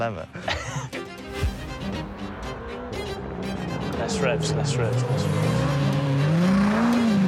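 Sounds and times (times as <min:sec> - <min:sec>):
speech: 0:00.0 - 0:00.5, 0:04.0 - 0:05.8
car engine revving on a track: 0:01.4 - 0:07.2.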